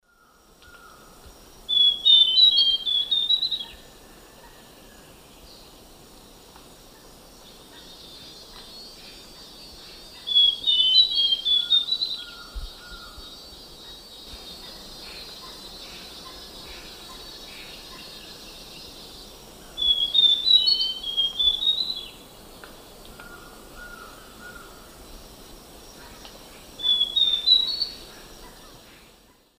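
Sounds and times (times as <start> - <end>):
Myrmeciza castanea duet in South American eastern lowlands: 0.1 - 5.9, 7.4 - 29.5.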